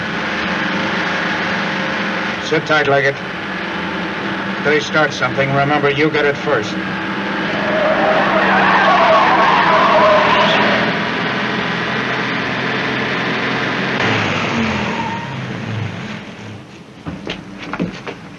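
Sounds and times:
car tires skidding and squealing: 0.2s - 16.7s
speech: 2.5s - 3.3s, 4.6s - 7.1s
car roaring past at speed: 6.6s - 16.6s.

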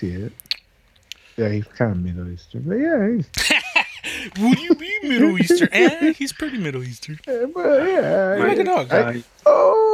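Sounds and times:
speech: 0.0s - 0.6s, 1.4s - 3.6s, 4.2s - 9.8s
laughter: 3.3s - 6.8s
person imitating a dog howling: 9.4s - 9.9s.

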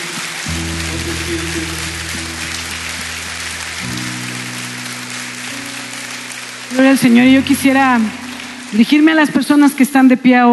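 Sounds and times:
loud crowd applause: 0.0s - 9.4s
organ-like keyboard chords: 0.5s - 8.8s
speech: 1.2s - 2.2s, 6.8s - 10.5s.

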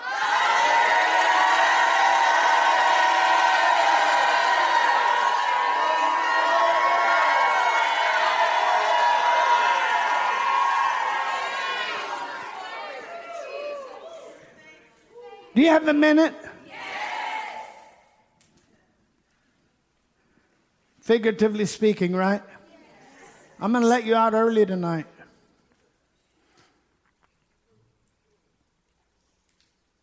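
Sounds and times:
large crowd shouting and cheering: 0.0s - 18.2s
speech: 15.6s - 16.4s, 21.1s - 22.6s, 23.6s - 25.1s.

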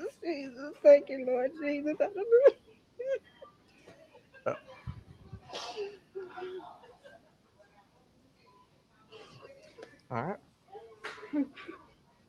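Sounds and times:
speech: 0.5s - 3.3s, 4.4s - 4.7s, 10.1s - 10.4s
person sneezing: 5.5s - 6.0s.

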